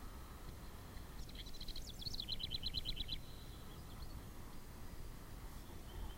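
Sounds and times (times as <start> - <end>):
house wren song with jumbled notes and trill: 0.2 - 4.3, 5.5 - 6.1.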